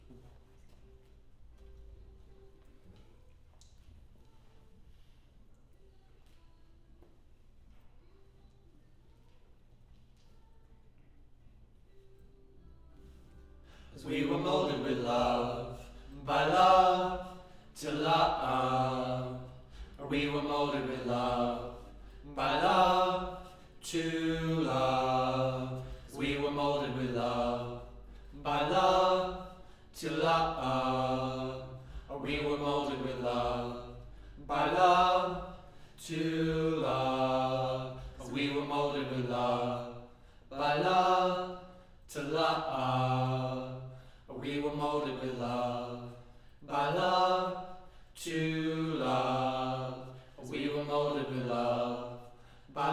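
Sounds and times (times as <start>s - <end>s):
choir singing low mid harmony: 13.0s - 52.9s.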